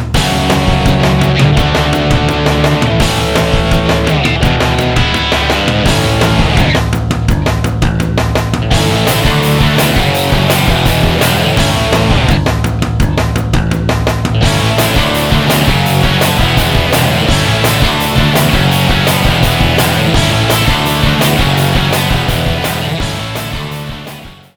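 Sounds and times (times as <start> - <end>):
overdriven punk guitar: 0.1 - 24.5.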